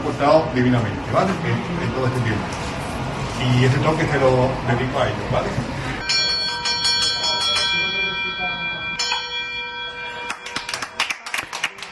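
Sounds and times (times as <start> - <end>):
speech: 0.2 - 2.8, 3.4 - 5.7
hospital bell struck with a hammer: 6.0 - 11.1
people clapping: 10.2 - 11.9.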